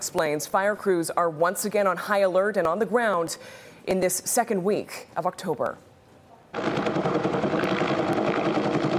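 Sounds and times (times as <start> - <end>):
speech: 0.1 - 5.9, 6.5 - 7.0
helicopter flying over wildfire, rotor beating: 6.6 - 8.9.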